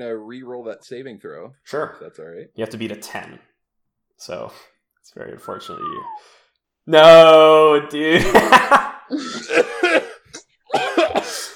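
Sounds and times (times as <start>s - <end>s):
speech: 0.0s - 3.5s, 4.2s - 10.1s
laughter: 8.1s - 11.5s
person deliberately faking harsh raspy coughs: 9.2s - 11.5s.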